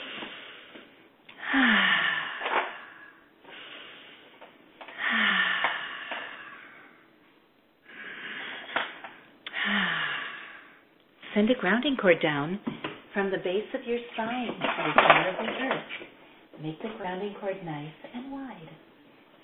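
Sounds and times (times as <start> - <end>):
slow deep breaths in and out: 0.0 - 7.1, 7.8 - 10.9
speech: 11.4 - 19.4.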